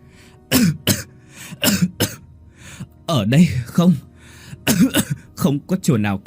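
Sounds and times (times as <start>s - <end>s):
old woman coughing violently: 0.5s - 2.2s, 4.6s - 5.3s
speech: 3.2s - 4.1s, 4.8s - 6.2s.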